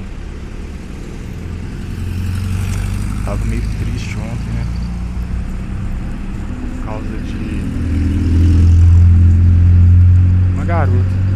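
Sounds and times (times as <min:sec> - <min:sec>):
car engine rumbling on the street: 0:00.0 - 0:11.3
speech: 0:03.3 - 0:04.8, 0:06.9 - 0:08.2, 0:10.7 - 0:11.2.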